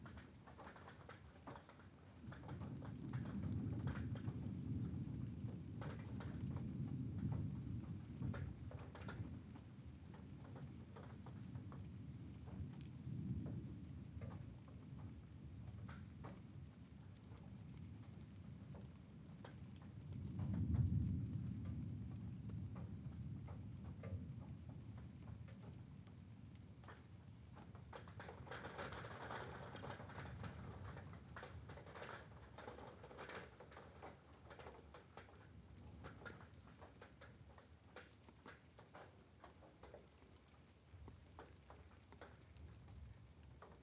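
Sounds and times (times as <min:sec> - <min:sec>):
steady rain at night: 0:00.0 - 0:43.8.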